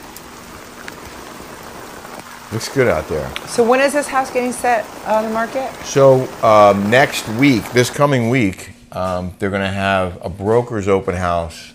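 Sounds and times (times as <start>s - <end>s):
steady rain pouring down: 0.0s - 8.3s
speech: 2.5s - 11.7s.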